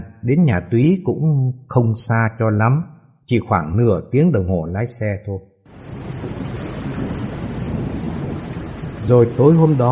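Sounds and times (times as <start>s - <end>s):
speech: 0.2s - 6.1s, 9.1s - 9.9s
heavy rain pouring down outside a car at night: 5.7s - 9.9s.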